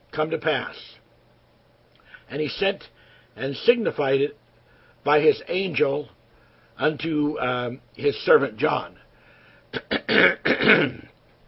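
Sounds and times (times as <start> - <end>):
speech: 0.2 - 1.0, 2.3 - 4.4, 5.0 - 6.2, 6.8 - 9.0, 9.7 - 11.0
man clearing throat while getting over a middle ear infection: 9.8 - 11.2.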